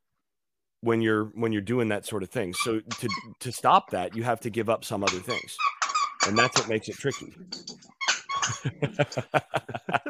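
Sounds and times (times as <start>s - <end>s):
speech: 0.8s - 7.7s, 8.5s - 10.0s
dog chewing a squeaky toy: 2.6s - 3.4s, 5.0s - 8.6s
laughter: 8.4s - 10.0s.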